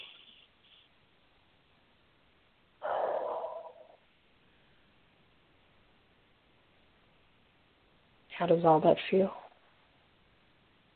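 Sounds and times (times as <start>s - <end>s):
faint hiss: 0.0s - 10.9s
deep breath: 2.8s - 5.0s
speech: 8.4s - 9.4s.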